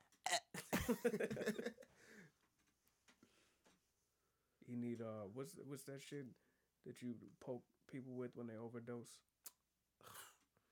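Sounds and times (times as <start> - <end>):
long drawn-out burp: 0.0 - 1.0, 10.0 - 10.4
throaty gulp: 0.0 - 1.5, 10.0 - 10.4
laughter: 0.6 - 1.8
speech: 0.6 - 2.3, 4.7 - 9.3.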